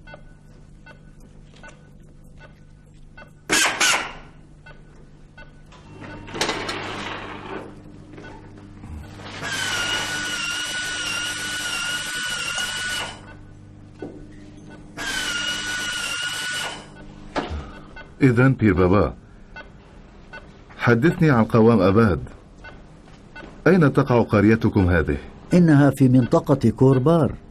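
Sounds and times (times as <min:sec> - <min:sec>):
high-pitched drill whining: 0:09.3 - 0:13.2, 0:15.0 - 0:16.9
speech: 0:18.2 - 0:19.2, 0:20.9 - 0:22.4, 0:23.7 - 0:27.4.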